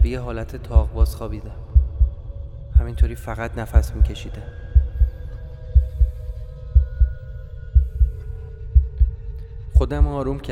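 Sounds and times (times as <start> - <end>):
speech: 0.1 - 1.7, 2.8 - 4.6, 9.8 - 10.4
heartbeat thumping in double beats: 0.8 - 1.1, 1.7 - 2.2, 2.8 - 3.2, 3.8 - 7.2, 7.8 - 9.2, 9.8 - 10.2.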